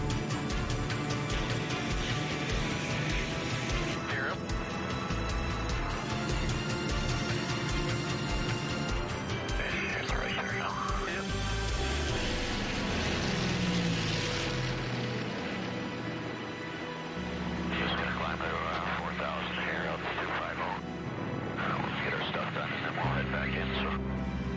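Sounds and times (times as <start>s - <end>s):
propeller airplane engines roaring at high power during takeoff roll: 0.0s - 24.5s
voices talking: 3.9s - 4.6s, 9.4s - 11.5s, 17.5s - 20.8s, 21.5s - 24.0s.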